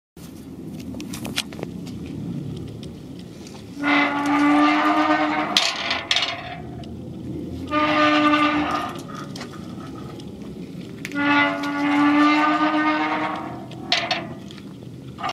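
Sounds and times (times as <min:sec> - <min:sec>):
gate at Pierre-la-Treiche: 0:03.8 - 0:06.8, 0:07.6 - 0:10.2, 0:11.1 - 0:14.6.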